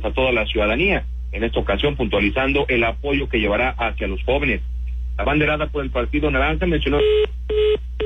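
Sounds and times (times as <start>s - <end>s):
speech: 0.0s - 7.9s
telephone line tones while redialing a dropped call: 7.0s - 7.8s.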